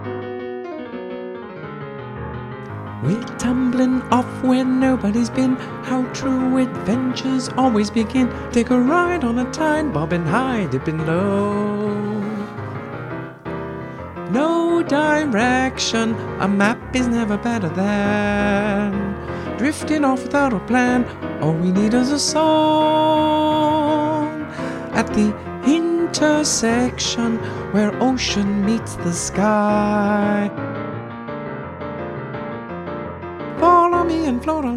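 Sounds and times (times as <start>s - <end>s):
person singing a vocal guide: 2.9s - 12.9s, 14.2s - 30.7s, 33.5s - 34.7s.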